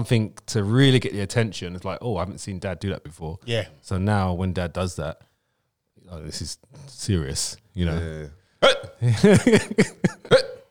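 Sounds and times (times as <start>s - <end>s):
speech: 0.0s - 5.3s, 6.1s - 10.6s
person hiccuping: 8.6s - 9.0s, 9.8s - 10.7s
laughter: 9.1s - 10.3s.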